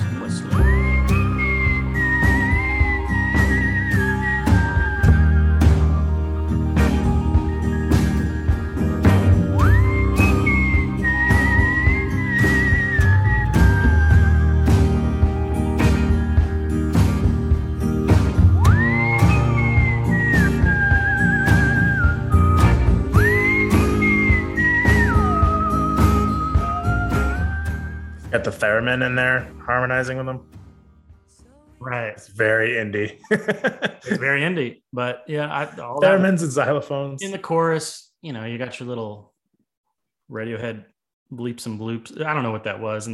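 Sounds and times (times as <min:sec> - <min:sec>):
full band backing with steady drums and bass: 0:00.0 - 0:30.3, 0:36.0 - 0:36.5
whistled melody: 0:00.2 - 0:30.3
speech: 0:28.6 - 0:30.6, 0:31.8 - 0:39.3, 0:40.3 - 0:43.1
laughter: 0:33.2 - 0:34.4.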